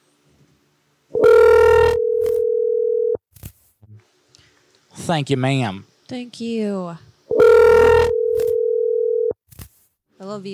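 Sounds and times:
telephone line electronic ringback tone: 1.2s - 3.2s, 7.3s - 9.4s
speech: 5.1s - 7.1s, 10.2s - 10.5s.

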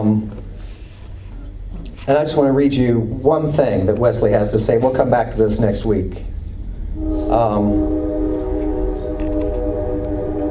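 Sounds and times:
speech: 0.0s - 0.4s, 2.1s - 6.3s, 6.9s - 8.1s
train passing outside with low rumble: 6.1s - 10.4s
train horn sounding in a long sustained blare: 6.9s - 10.4s.

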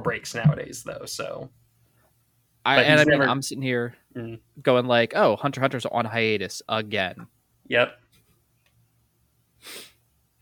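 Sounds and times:
speech: 0.0s - 1.6s, 2.6s - 8.0s, 9.6s - 9.9s
nose sniff: 9.6s - 10.0s.

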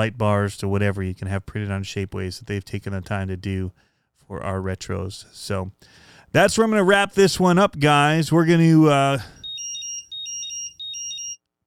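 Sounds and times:
speech: 0.0s - 9.4s
battery charger electronic alarm beeping in shrill warbling tones: 9.3s - 11.4s.

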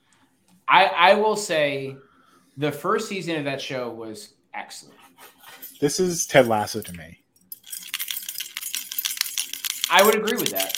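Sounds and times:
speech: 0.7s - 7.2s, 9.9s - 10.7s
keys jingling: 5.5s - 10.7s.

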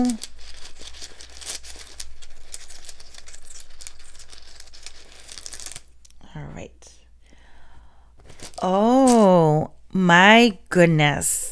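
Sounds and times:
speech: 0.0s - 0.3s, 8.6s - 9.0s, 10.0s - 11.5s
small rune stones clicking and clattering in a crinkly bag: 0.2s - 6.2s.

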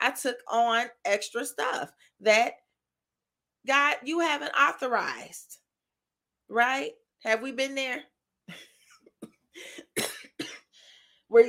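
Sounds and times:
speech: 0.0s - 2.6s, 3.6s - 5.6s, 6.5s - 8.7s, 9.6s - 10.1s
harsh coughs: 9.8s - 10.8s.

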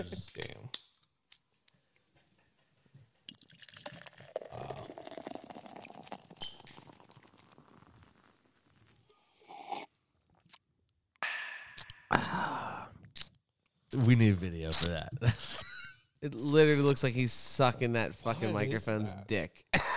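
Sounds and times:
speech: 0.0s - 0.8s, 14.0s - 15.6s, 16.2s - 19.7s
voice imitating beer being poured with mouth sounds: 3.3s - 9.9s.

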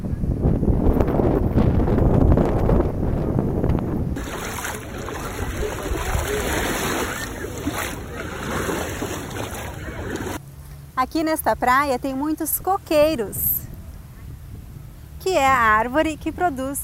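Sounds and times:
wind rushing over the microphone: 0.0s - 10.4s, 13.3s - 16.8s
footsteps on sand: 4.2s - 10.4s
small waves of a calm sea washing on a beach in summer: 4.2s - 10.4s
speech: 11.0s - 13.6s, 15.2s - 16.8s.

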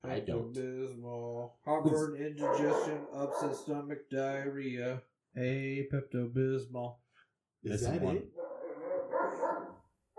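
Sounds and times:
speech: 0.1s - 7.0s, 7.6s - 8.4s
dog barking: 2.4s - 3.8s, 8.3s - 10.1s.

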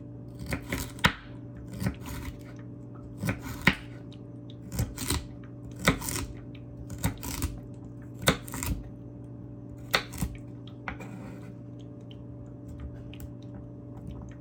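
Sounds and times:
steady low hum in a small kitchen: 0.0s - 14.4s
knife chopping carrots on a board: 0.4s - 2.5s, 3.2s - 4.0s, 4.7s - 7.6s, 8.2s - 8.8s, 9.8s - 11.5s.

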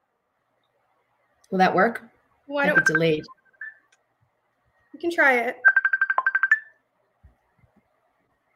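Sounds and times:
speech: 1.5s - 3.4s, 5.0s - 5.7s
electronic phone ringtone for incoming call: 2.6s - 3.8s, 5.6s - 6.8s.

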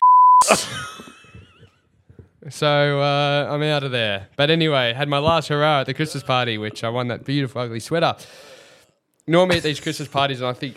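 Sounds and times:
censor bleep: 0.0s - 0.5s
speech: 0.5s - 1.2s, 2.5s - 8.6s, 9.3s - 10.7s.

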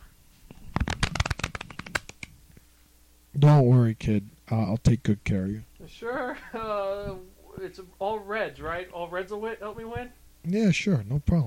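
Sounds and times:
playing cards being shuffled: 0.5s - 2.3s
speech: 3.4s - 11.4s.

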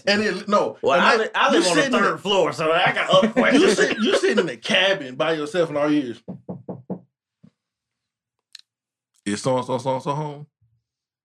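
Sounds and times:
laughter: 0.0s - 6.2s
speech: 0.0s - 6.4s, 9.3s - 10.5s
knocking on a door: 6.2s - 7.1s.

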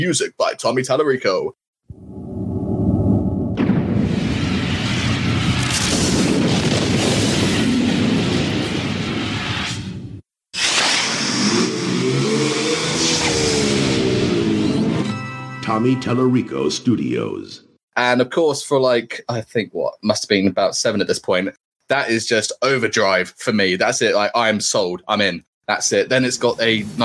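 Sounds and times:
speech: 0.0s - 2.0s, 15.8s - 27.0s
quiet low hum: 1.9s - 4.5s
loud sudden explosion: 1.9s - 14.4s.

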